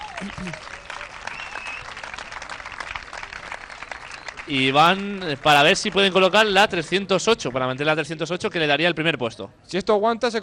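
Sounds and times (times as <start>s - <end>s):
audience applauding: 0.0s - 7.9s
speech: 0.2s - 0.8s, 4.5s - 10.4s
whistle-like call: 1.3s - 1.9s.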